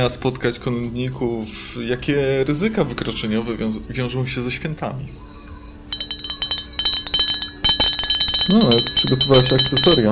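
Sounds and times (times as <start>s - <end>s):
speech: 0.0s - 5.3s, 8.5s - 10.1s
small bell jingling: 5.9s - 10.1s.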